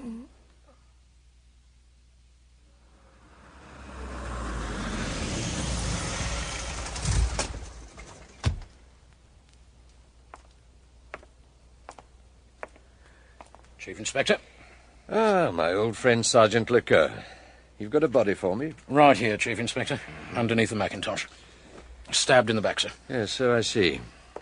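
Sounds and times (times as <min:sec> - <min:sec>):
car approaching: 0:02.7 - 0:08.8
speech: 0:13.8 - 0:14.4, 0:15.1 - 0:21.5, 0:22.1 - 0:24.2.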